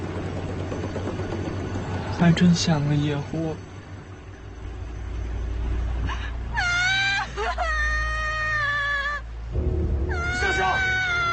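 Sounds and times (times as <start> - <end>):
low steady rumble: 0.0 - 11.3
speech: 2.2 - 3.7
child crying: 6.6 - 9.3, 10.1 - 11.3.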